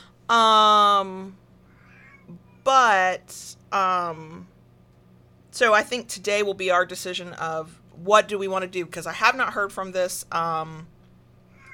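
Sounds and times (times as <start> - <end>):
speech: 0.3 - 1.4, 2.3 - 4.5, 5.6 - 10.9
cat meowing in a room: 1.7 - 2.7, 11.5 - 11.7.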